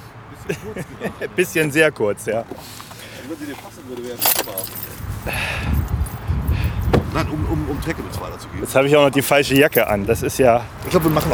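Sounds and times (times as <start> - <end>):
speech: 0.4 - 5.9, 6.6 - 11.3
keys jangling while locking a car: 4.0 - 8.5, 9.1 - 10.1, 10.8 - 11.3.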